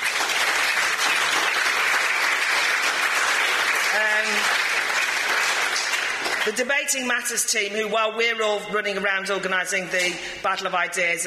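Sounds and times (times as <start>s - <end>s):
sustained applause from a large audience: 0.0s - 6.6s
speech: 4.0s - 4.6s, 6.4s - 11.2s.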